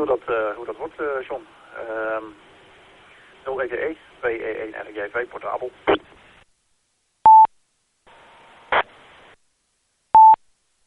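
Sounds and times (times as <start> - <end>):
speech: 0.0 - 2.6, 3.4 - 6.2
radio repeater static burst with sharp crackle: 0.3 - 6.5, 8.7 - 9.4
loud short electronic beeps: 7.3 - 7.5, 10.2 - 10.4.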